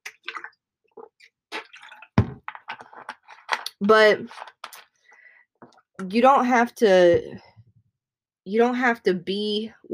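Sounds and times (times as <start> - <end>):
person drinking water with sips and gulps: 0.0 - 3.3
speech: 3.8 - 4.5, 6.0 - 7.5, 8.5 - 9.9.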